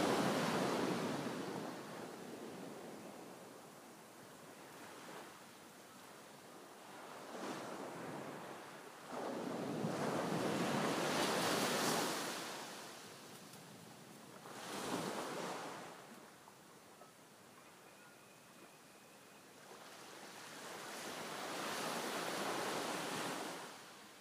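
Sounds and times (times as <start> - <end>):
waves breaking on the shore: 0.0 - 3.8, 7.0 - 13.2, 14.4 - 16.1, 19.7 - 24.2
steady hiss of surf: 0.0 - 24.2
faint high tone: 17.0 - 19.6.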